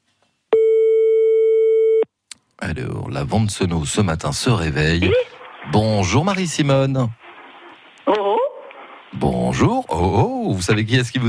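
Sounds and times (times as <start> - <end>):
telephone ringback tone on an outgoing call: 0.6 - 2.0
speech: 2.6 - 7.2, 8.1 - 8.3, 9.2 - 11.2.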